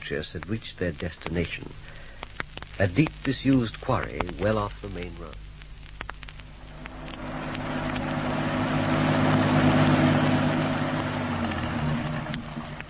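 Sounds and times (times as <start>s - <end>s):
speech: 0.1s - 1.9s, 2.8s - 5.4s
car engine idling at the edge of a deep disused quarry: 6.7s - 12.8s.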